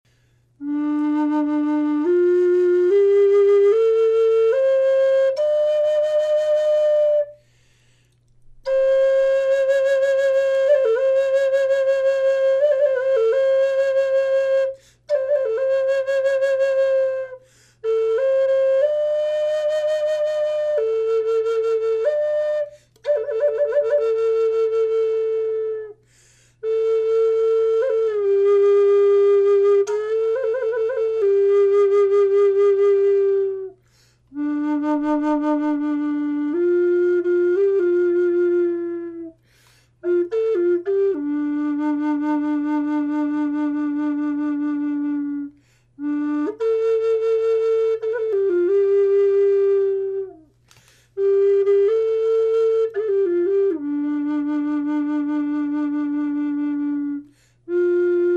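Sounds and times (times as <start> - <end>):
natural wood flute: 0.1 - 58.3.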